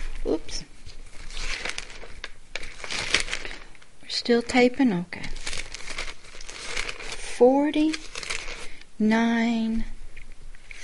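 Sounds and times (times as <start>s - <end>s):
paper sheets being turned over and handled: 0.0s - 3.8s, 4.5s - 8.8s, 10.6s - 10.8s
speech: 4.2s - 5.4s, 7.4s - 8.1s, 9.0s - 9.9s.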